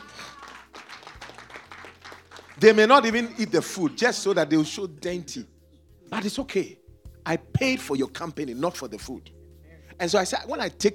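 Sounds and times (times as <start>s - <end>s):
audience clapping: 0.0s - 4.7s
speech: 2.6s - 5.5s, 6.1s - 9.4s, 10.0s - 10.9s.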